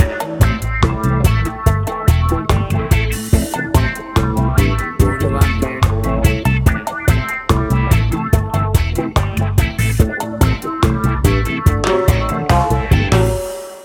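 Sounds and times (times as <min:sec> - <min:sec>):
reggae funk guitar fusion music: 0:00.0 - 0:13.8.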